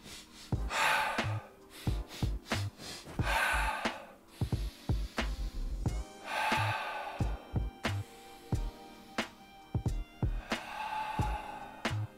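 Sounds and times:
person panting heavily while standing still: 0.0s - 9.1s, 10.3s - 12.1s.

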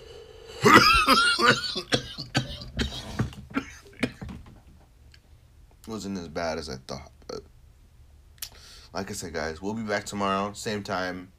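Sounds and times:
person coughing close to the mic: 0.6s - 4.4s
speech: 1.1s - 1.9s, 6.0s - 7.1s, 9.0s - 11.3s.

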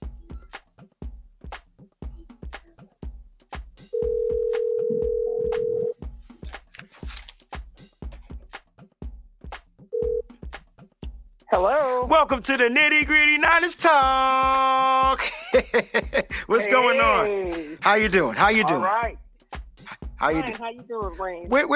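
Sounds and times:
continuous rhythmic thumping beat: 0.0s - 21.7s
telephone tone as a call-in talk show host places a call: 4.0s - 6.0s, 10.0s - 10.2s
speech: 11.5s - 19.2s, 20.2s - 21.7s
laughter: 15.0s - 18.8s.

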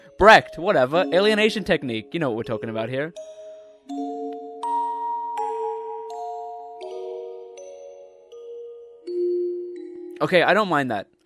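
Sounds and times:
struck bell tones with reverb: 0.0s - 10.6s
speech: 0.2s - 3.3s, 10.2s - 11.2s.

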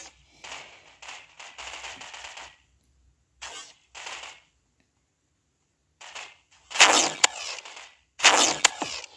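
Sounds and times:
gunfire in a Roblox video game: 0.0s - 2.7s, 3.4s - 4.5s, 6.0s - 9.1s.

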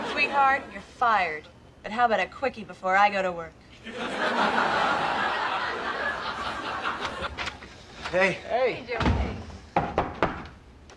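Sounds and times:
laughter: 0.0s - 0.9s, 3.8s - 8.4s
speech: 0.3s - 4.8s, 8.1s - 9.3s
knocking on a door: 9.0s - 10.5s.

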